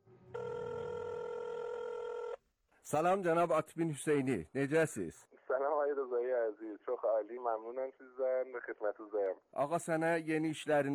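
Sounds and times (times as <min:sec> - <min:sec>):
telephone ringing: 0:00.3 - 0:02.4
speech: 0:02.9 - 0:10.9.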